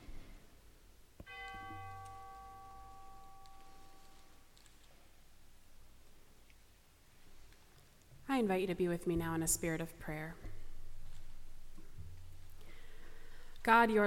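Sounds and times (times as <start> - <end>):
soft hiss: 0.0 - 14.0
memorial bell chime ringing: 1.3 - 4.4
speech: 8.4 - 10.5, 13.6 - 14.0.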